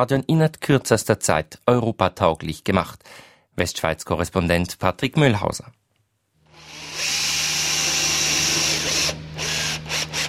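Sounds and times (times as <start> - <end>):
speech: 0.0 - 5.8
low mechanical hum: 6.4 - 10.2
power drill whining at stadium construction: 6.5 - 10.2.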